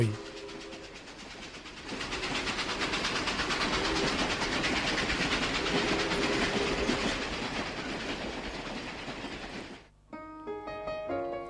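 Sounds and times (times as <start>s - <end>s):
train carriage rolling on rails: 0.0s - 9.9s
music: 10.1s - 11.4s.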